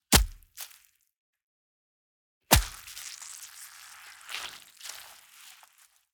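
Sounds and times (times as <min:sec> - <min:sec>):
gore splat splatter: 0:00.2 - 0:00.4, 0:02.5 - 0:05.9.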